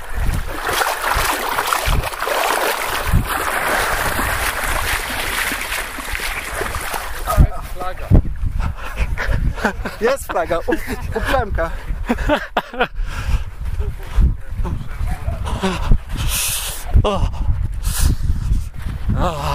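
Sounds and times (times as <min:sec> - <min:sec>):
cold water sloshing and splashing as people wade out: 0:00.0 - 0:07.8
wind rumble on the microphone: 0:00.0 - 0:19.5
laughter: 0:08.6 - 0:13.1, 0:14.9 - 0:16.0
speech: 0:09.6 - 0:13.0, 0:15.6 - 0:15.9.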